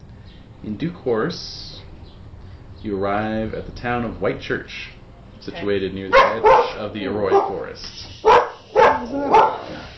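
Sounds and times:
speech: 0.6s - 1.8s, 2.8s - 8.4s, 9.1s - 9.9s
dog barking: 6.1s - 9.8s.

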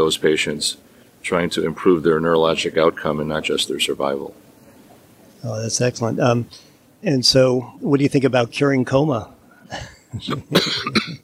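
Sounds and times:
speech: 0.0s - 4.4s, 5.4s - 11.2s
harsh raspy coughs with throat-clearing: 9.7s - 11.2s.

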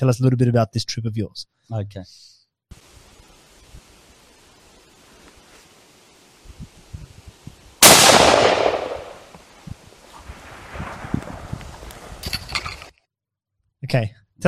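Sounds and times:
speech: 0.0s - 2.9s, 13.9s - 14.4s
gunshot during a goat hunt on private property: 7.8s - 9.3s.

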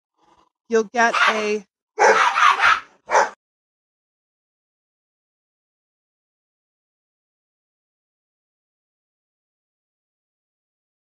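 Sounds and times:
speech: 0.7s - 2.2s
dogs barking in a house while being fed dinner: 1.1s - 3.4s.

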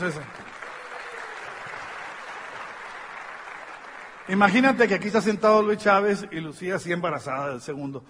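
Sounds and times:
speech: 0.0s - 0.4s, 4.3s - 8.0s
crowd applause: 0.0s - 5.2s.

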